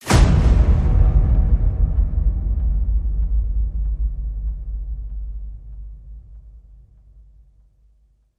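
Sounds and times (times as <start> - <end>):
big revolving punch hit: 0.0 - 6.8.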